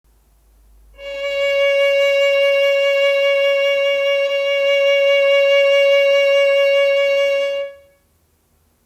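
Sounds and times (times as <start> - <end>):
C sharp tone with vibrato: 1.0 - 8.0.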